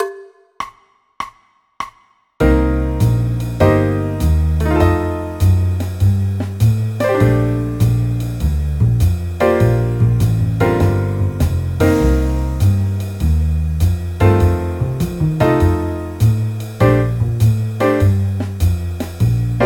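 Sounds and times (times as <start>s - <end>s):
B-flat major chord progression: 2.4s - 19.6s.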